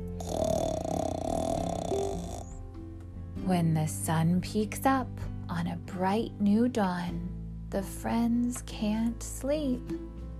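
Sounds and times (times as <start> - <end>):
reader's voice imitating a bear's rumbling snore: 0.1 - 2.6
speech: 3.5 - 10.1.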